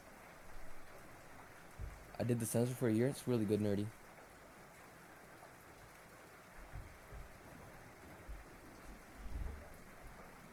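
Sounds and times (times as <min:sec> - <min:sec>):
steady rain hissing: 0:00.0 - 0:10.5
speech: 0:02.2 - 0:04.0
low rolling rumbles of thunder: 0:08.2 - 0:10.3.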